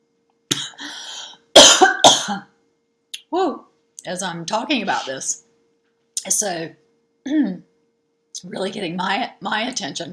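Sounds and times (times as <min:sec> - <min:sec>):
person coughing with something caught in the throat: 0:01.6 - 0:02.5
speech: 0:02.3 - 0:02.5, 0:03.3 - 0:05.5, 0:06.2 - 0:07.7, 0:08.4 - 0:10.1.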